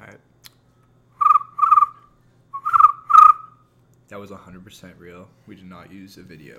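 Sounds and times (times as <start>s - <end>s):
person imitating cricket chirping: 1.2s - 2.0s, 2.6s - 3.5s
speech: 4.1s - 6.5s.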